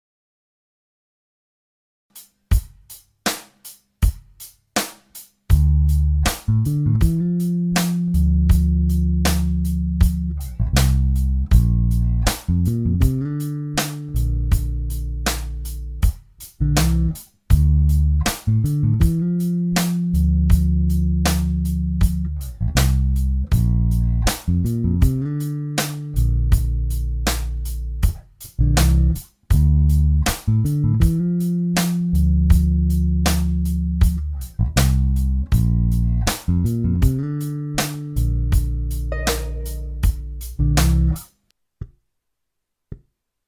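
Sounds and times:
D minor to Bb major bassline: 0:05.5 - 0:41.3.

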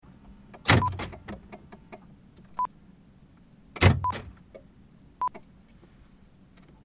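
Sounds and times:
car central locking heard from interior: 0:00.5 - 0:02.5, 0:03.7 - 0:04.6.

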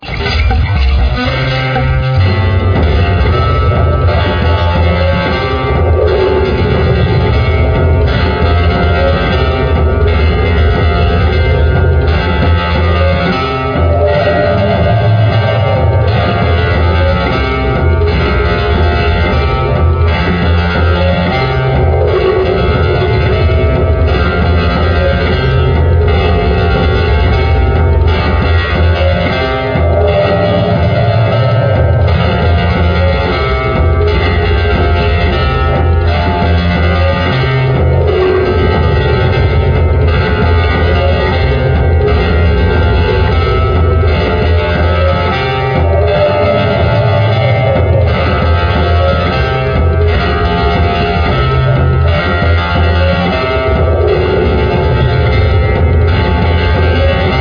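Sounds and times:
industrial jungle music: 0:00.0 - 0:57.4.

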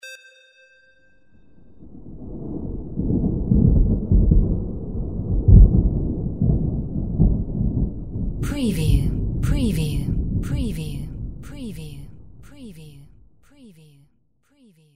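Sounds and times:
low-frequency sub thunder: 0:01.8 - 0:11.5.

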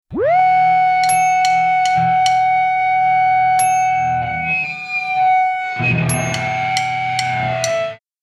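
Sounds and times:
guitar feedback: 0:00.1 - 0:08.0.

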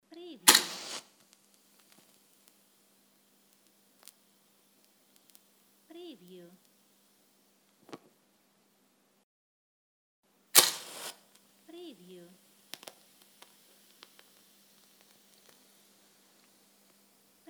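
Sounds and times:
Lucifer match striking: 0:00.4 - 0:07.8, 0:10.5 - 0:17.4.

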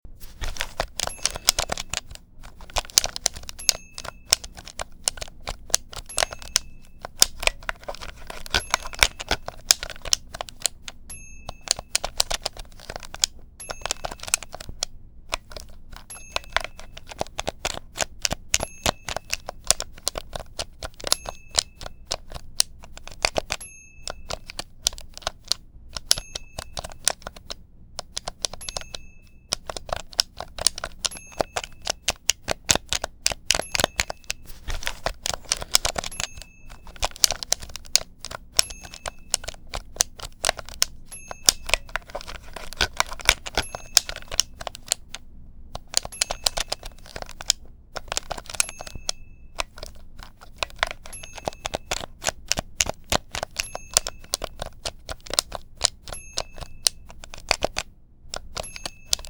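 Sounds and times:
video game controller: 0:00.2 - 0:45.2, 0:45.8 - 0:59.2.

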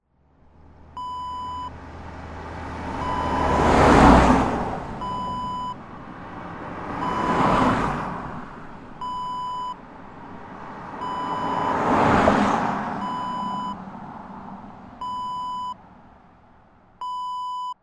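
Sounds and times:
cars passing by: 0:00.0 - 0:17.8.

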